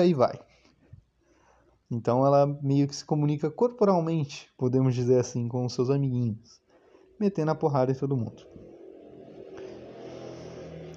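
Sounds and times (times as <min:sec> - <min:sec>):
speech: 0:00.0 - 0:00.5, 0:01.9 - 0:06.6, 0:07.2 - 0:08.6
motorcycle passing: 0:07.8 - 0:10.9.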